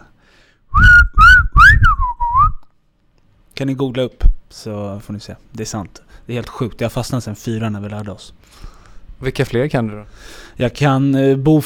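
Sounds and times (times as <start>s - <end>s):
person whistling an imitation of pied flycatcher song: 0.7s - 2.7s
speech: 3.6s - 11.6s.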